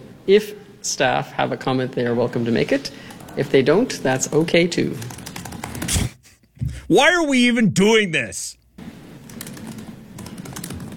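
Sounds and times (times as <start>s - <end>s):
speech: 0.2s - 5.3s, 6.9s - 8.6s
computer keyboard typing: 4.2s - 5.9s, 9.2s - 10.9s.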